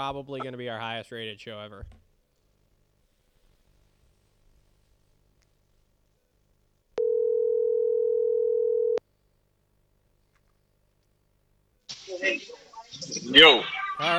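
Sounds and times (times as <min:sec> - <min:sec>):
speech: 0:00.0 - 0:02.0, 0:12.1 - 0:14.1
phone ringback tone, steady electronic hum: 0:07.0 - 0:09.0.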